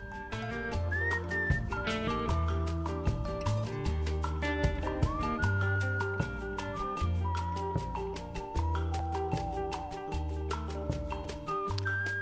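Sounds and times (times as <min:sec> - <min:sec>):
rhythmic musical accompaniment with deep bass: 0:00.0 - 0:12.2
woman whistling a song melody: 0:00.2 - 0:01.9, 0:04.9 - 0:12.2.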